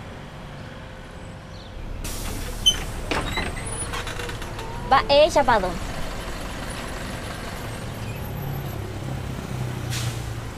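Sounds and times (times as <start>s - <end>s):
bus engine rumbling while pulling up and idling: 0.0s - 10.5s
bus air brakes hissing: 2.0s - 5.0s, 9.8s - 10.5s
bus door mechanism: 2.2s - 4.8s
speech: 4.9s - 5.9s.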